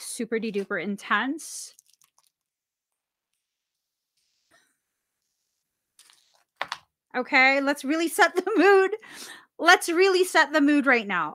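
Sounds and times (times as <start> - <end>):
speech: 0.2 - 1.8, 7.1 - 11.3
deck of cards being shuffled: 6.0 - 6.9.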